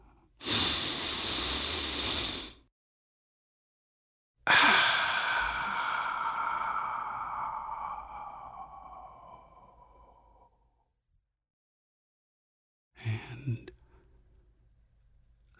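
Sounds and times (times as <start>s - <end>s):
slow deep breath: 0.0s - 2.6s, 4.5s - 10.8s.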